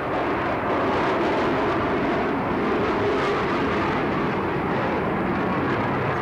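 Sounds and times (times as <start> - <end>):
turbine engines of a jet squadron flying overhead hidden in low cloud: 0.0 - 6.2.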